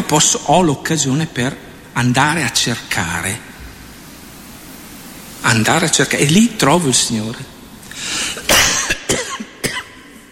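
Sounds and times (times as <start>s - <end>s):
faint hiss: 0.0s - 10.3s
speech: 0.1s - 3.5s, 5.4s - 8.6s
person coughing: 8.4s - 10.2s.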